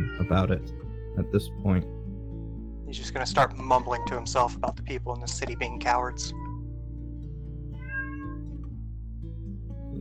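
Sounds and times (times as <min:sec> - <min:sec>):
cat meowing: 0:00.0 - 0:00.4, 0:03.7 - 0:04.5, 0:05.3 - 0:06.6, 0:07.8 - 0:08.4
speech: 0:00.3 - 0:02.0, 0:02.9 - 0:06.4.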